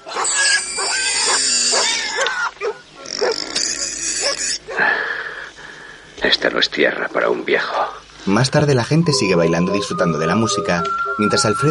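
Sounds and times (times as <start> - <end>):
pig squealing: 0.0 - 4.8
speech: 6.3 - 11.6.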